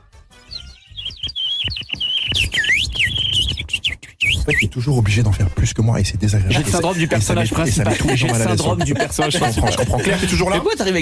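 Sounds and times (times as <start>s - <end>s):
person whistling a bird imitation: 0.5s - 4.8s
speech: 4.5s - 10.9s
laughter: 6.5s - 10.7s.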